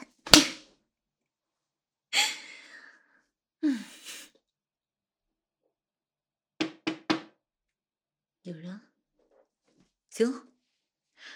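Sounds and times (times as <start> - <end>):
sharp snap: 0.2 - 0.6
knocking on a door: 6.6 - 7.3
speech: 8.4 - 8.9, 10.2 - 10.5.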